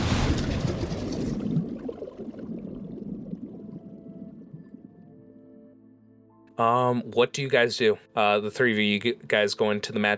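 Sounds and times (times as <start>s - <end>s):
water plunging with a hissing splash: 0.0s - 5.2s
speech: 6.6s - 10.1s.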